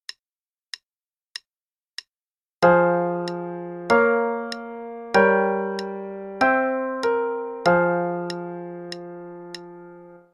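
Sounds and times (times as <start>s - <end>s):
chord progression in F minor: 2.6s - 10.2s.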